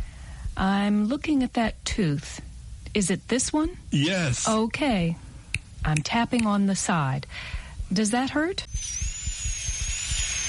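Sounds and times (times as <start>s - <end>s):
speech: 0.6s - 5.2s, 5.8s - 9.0s
dental drill drilling out an old tooth filling: 8.6s - 10.4s.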